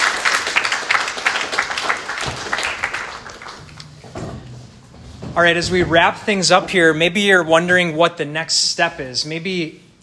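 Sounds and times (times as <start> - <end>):
audience applause: 0.0 - 3.8
speech: 5.4 - 10.0.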